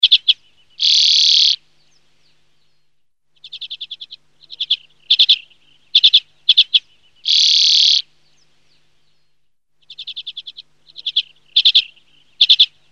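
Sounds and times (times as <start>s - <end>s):
common redpoll chattering trills and twittering: 0.0s - 1.6s, 3.4s - 8.4s, 9.8s - 12.9s.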